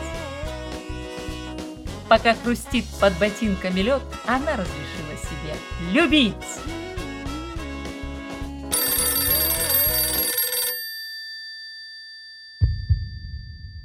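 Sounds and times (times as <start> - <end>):
speech: 2.1 - 6.7
telephone ringing with an incoming long-distance call: 8.7 - 12.0
low knock: 12.6 - 13.8.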